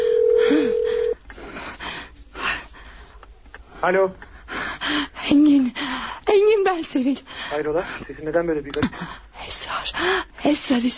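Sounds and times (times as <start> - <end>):
phone ringing tone as a caller waits for an answer: 0.0 - 1.2
noise: 0.0 - 10.9
speech: 3.8 - 4.3, 4.9 - 5.8, 6.7 - 10.9.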